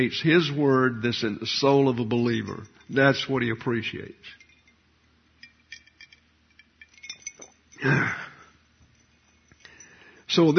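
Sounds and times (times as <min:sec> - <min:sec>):
speech: 0:00.0 - 0:04.4, 0:07.8 - 0:08.2, 0:10.3 - 0:10.5
glass of water clinking: 0:02.1 - 0:10.5.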